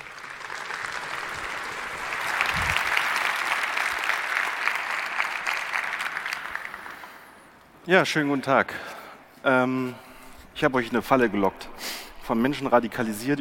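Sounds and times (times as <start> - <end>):
audience applause welcoming a speaker: 0.0 - 7.5
speech: 7.9 - 13.4.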